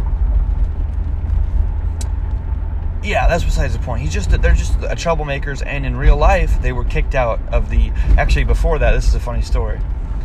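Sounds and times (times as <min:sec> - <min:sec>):
car driving on a road: 0:00.0 - 0:10.2
speech: 0:03.1 - 0:09.9.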